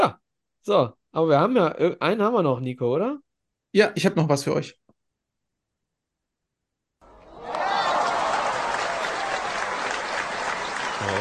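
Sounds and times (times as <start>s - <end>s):
speech: 0.0s - 4.8s
sustained applause from a group: 7.2s - 11.1s.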